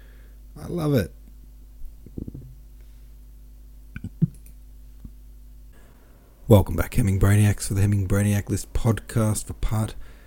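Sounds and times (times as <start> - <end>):
quiet low hum: 0.0 - 10.2
speech: 0.6 - 1.2, 6.5 - 10.1
soft abrupt hiccups: 4.0 - 4.4.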